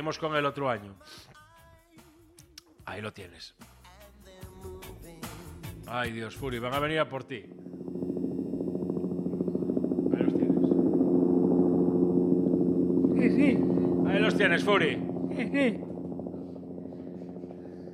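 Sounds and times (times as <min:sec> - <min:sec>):
speech: 0:00.0 - 0:01.4, 0:02.9 - 0:03.7, 0:05.9 - 0:07.7, 0:14.4 - 0:15.9
helicopter flying overhead: 0:06.7 - 0:17.9.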